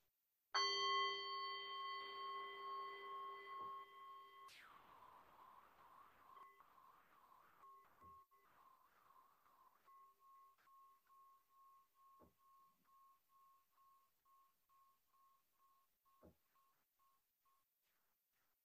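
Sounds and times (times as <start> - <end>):
meditation bell ringing: 0.6 - 4.6.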